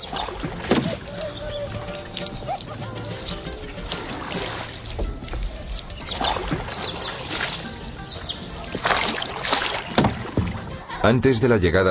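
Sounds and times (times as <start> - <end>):
water splashing and sloshing in a canal at Xochimilco: 0.0 - 11.0
knocks: 9.9 - 10.7
speech: 11.1 - 11.8.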